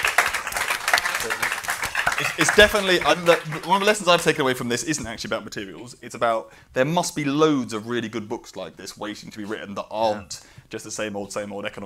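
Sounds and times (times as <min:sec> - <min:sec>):
audience applause: 0:00.0 - 0:04.3
speech: 0:01.2 - 0:11.8.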